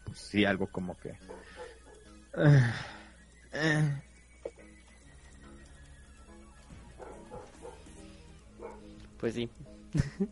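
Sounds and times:
speech: 0.2 - 1.4, 2.3 - 3.0, 3.6 - 4.1, 9.2 - 10.2
dogs barking: 1.1 - 2.2, 6.8 - 9.0
laughter: 9.9 - 10.2.

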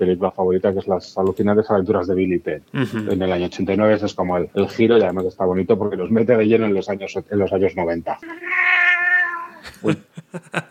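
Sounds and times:
speech: 0.0 - 8.6, 9.8 - 10.6
laughter: 2.8 - 3.2, 9.6 - 10.6
cat meowing into a microphone: 8.2 - 9.6.

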